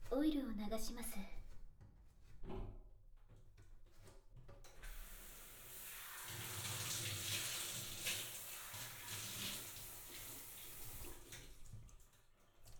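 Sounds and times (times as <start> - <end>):
speech: 0.1 - 1.4
shower water running during rinse: 4.9 - 11.7.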